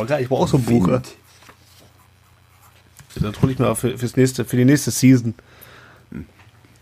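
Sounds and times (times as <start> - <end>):
speech: 0.0 - 1.2, 3.2 - 6.4
faint hum: 0.0 - 6.8
paper calendar page being turned: 0.4 - 3.9.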